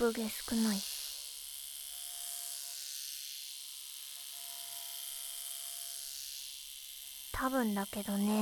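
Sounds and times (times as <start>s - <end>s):
speech: 0.0s - 0.9s, 7.4s - 8.3s
electric shaver buzzing near the ear: 0.0s - 8.3s.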